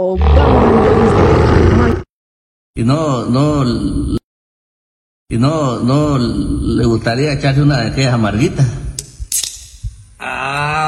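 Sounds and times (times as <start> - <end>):
speech: 0.0 - 2.0, 2.8 - 4.2, 5.3 - 8.8
beer bottle caps popping open: 9.0 - 9.8.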